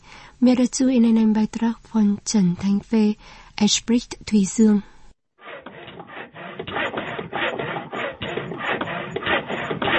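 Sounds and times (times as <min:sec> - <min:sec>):
speech: 0:00.4 - 0:04.9
saws cutting wood in carpentry workshop: 0:05.4 - 0:09.9.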